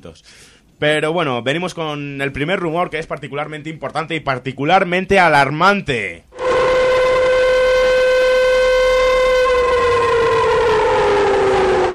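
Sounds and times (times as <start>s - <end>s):
speech: 0.0s - 6.3s
civil defense siren wailing: 6.4s - 11.9s.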